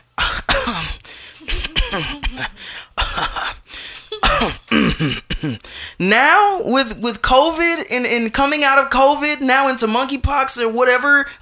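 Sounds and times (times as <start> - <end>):
person coughing harshly into a microphone: 0.2 - 5.8
speech: 0.7 - 3.6, 4.4 - 11.4.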